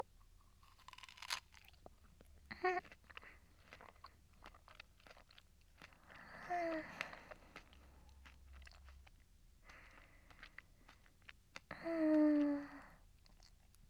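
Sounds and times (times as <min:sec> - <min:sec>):
crunchy chewing and biting of food: 0:00.2 - 0:13.8.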